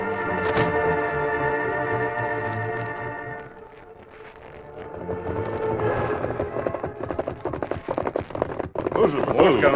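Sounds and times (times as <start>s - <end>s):
sustained dramatic music: 0.0s - 7.1s
horses' hooves clip-clopping as riders leave: 3.4s - 9.7s
speech: 9.4s - 9.7s.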